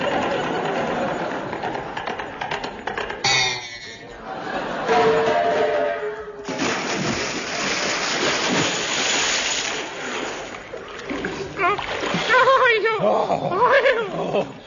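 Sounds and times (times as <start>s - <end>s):
laughter: 0.0s - 2.3s, 4.0s - 5.8s, 12.3s - 14.6s
heavy splash of something plunging into deep water: 6.4s - 10.5s
water churning and sloshing: 6.4s - 14.6s.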